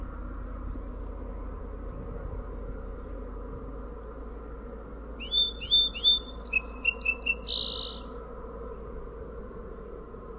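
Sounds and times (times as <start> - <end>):
steady low hum: 0.0 - 10.3
song sparrow singing: 5.2 - 8.8.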